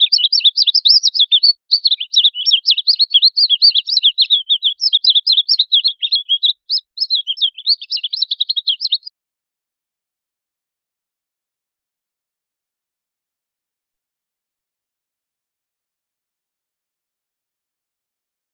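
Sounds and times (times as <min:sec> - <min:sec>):
trapped bird chirping: 0:00.0 - 0:09.1.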